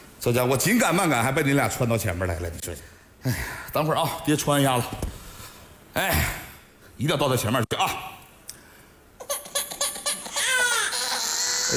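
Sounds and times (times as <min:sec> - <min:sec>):
speech: 0:00.2 - 0:05.1, 0:06.0 - 0:06.4, 0:07.0 - 0:08.1
baby crying: 0:09.2 - 0:11.7.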